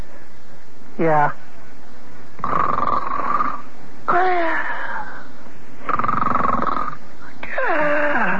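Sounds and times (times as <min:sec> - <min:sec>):
speech: 0:01.0 - 0:01.4, 0:02.4 - 0:02.8
people fake snoring with raspy breaths and whistling exhales: 0:02.4 - 0:04.3, 0:05.8 - 0:08.3.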